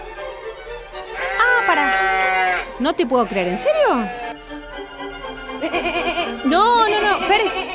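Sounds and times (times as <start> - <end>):
sheep bleating: 1.2 - 4.4, 5.6 - 7.7
speech: 1.8 - 2.0, 2.8 - 4.2, 6.5 - 7.6.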